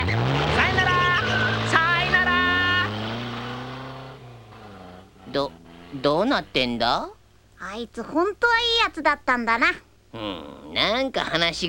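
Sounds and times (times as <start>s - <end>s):
car driving by in an animated scene: 0.0s - 6.8s
speech: 5.4s - 11.6s.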